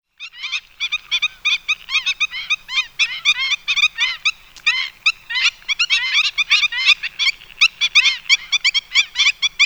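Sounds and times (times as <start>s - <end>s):
black-winged stilt Himantopus himantopus yapping calls: 0.2s - 9.6s.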